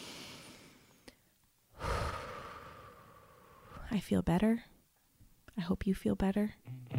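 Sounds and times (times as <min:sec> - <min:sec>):
person breathing in through the nose and out through the mouth: 0:00.0 - 0:03.9
speech: 0:03.9 - 0:04.7, 0:05.6 - 0:06.8.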